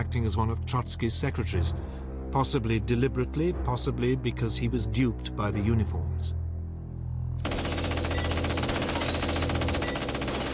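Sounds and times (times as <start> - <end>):
speech: 0.0 - 6.4
automatic gunfire riddling a bedroom: 7.4 - 10.5.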